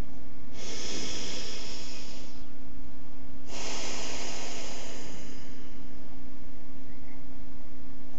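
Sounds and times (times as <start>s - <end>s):
noisy breaths through the throat during a guided breathing exercise: 0.0s - 2.6s, 3.4s - 6.7s
steady low hum: 0.0s - 8.1s.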